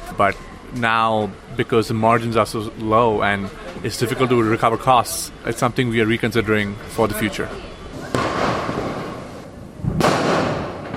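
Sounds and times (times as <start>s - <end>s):
speech: 0.2s - 7.8s
fireworks booming outdoors: 7.9s - 10.9s.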